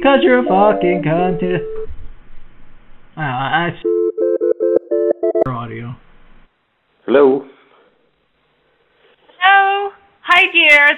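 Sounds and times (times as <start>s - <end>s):
speech: 0.0s - 1.7s, 3.2s - 4.0s, 5.5s - 6.1s, 7.1s - 7.5s, 9.4s - 10.9s
voicemail answering tone of steady mid-pitched electronic beeps: 0.5s - 1.9s, 3.8s - 5.5s.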